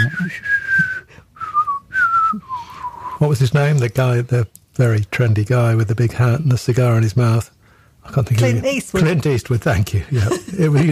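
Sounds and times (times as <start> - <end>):
person whistling a western theme tune: 0.0 - 3.2
speech: 0.1 - 0.5, 3.2 - 10.9
laughter: 10.0 - 10.9.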